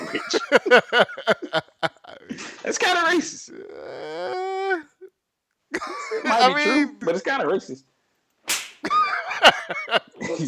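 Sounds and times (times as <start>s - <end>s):
laughter: 0.0s - 2.6s, 5.7s - 6.8s, 8.8s - 10.4s
speech: 0.1s - 1.7s, 2.3s - 4.9s, 5.7s - 7.9s, 9.7s - 10.4s
hand slapping skin: 8.4s - 8.9s.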